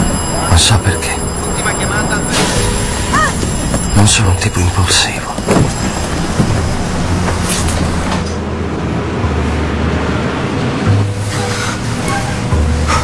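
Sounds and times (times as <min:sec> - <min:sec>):
brief metallic squeals of a train: 0:00.0 - 0:07.7, 0:11.1 - 0:13.0
train to Montauk rumbling along rails: 0:00.0 - 0:13.0
speech: 0:00.6 - 0:01.7, 0:04.0 - 0:05.7.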